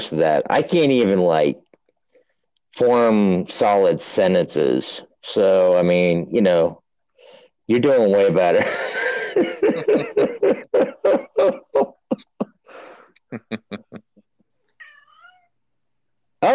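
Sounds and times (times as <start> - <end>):
speech: 0.1 - 1.6, 2.8 - 6.8, 7.7 - 12.3
laughter: 8.5 - 14.4
cat meowing: 14.7 - 15.6.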